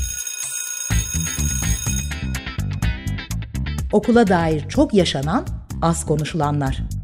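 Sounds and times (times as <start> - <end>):
school bell ringing with a bright metallic clang: 0.0 - 3.0
speech: 3.9 - 6.9.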